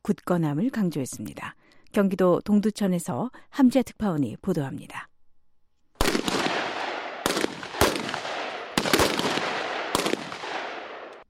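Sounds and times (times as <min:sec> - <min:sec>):
speech: 0:00.0 - 0:05.1
loud gunshots at army base: 0:06.0 - 0:11.2.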